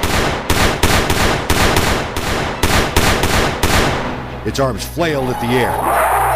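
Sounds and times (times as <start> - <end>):
pistol firing a whole magazine in rapid succession: 0.0 - 4.2
speech: 4.4 - 6.2.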